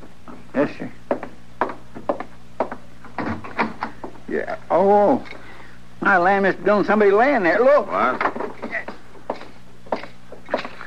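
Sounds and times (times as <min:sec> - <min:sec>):
speech: 0:00.6 - 0:01.0, 0:04.3 - 0:05.4, 0:06.0 - 0:08.3
door rattling against its frame as someone works it: 0:03.1 - 0:04.0.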